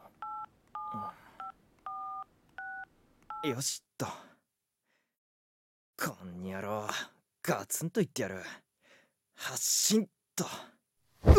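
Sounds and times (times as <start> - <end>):
two-tone keypad beeps from a mobile phone being dialed: 0.2 - 3.5
speech: 3.4 - 4.2, 6.0 - 8.6, 9.4 - 10.7.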